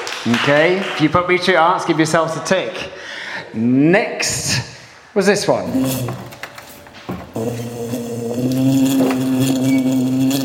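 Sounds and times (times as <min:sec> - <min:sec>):
speech: 0:00.2 - 0:06.3, 0:07.4 - 0:09.0
bee buzzing: 0:07.3 - 0:10.4.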